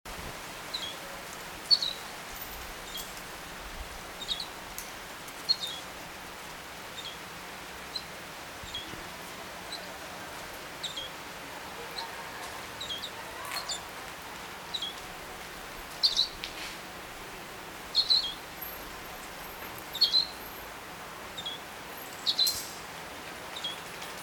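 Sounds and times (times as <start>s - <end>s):
steady hiss of background noise: 0.1s - 24.2s
European goldfinch giving short high twittering call notes: 1.7s - 2.0s, 4.2s - 4.5s, 5.4s - 5.8s, 7.0s - 7.2s, 7.9s - 9.0s, 10.8s - 11.2s, 12.8s - 13.9s, 16.0s - 16.4s, 17.9s - 18.8s, 19.9s - 20.4s, 21.4s - 22.6s.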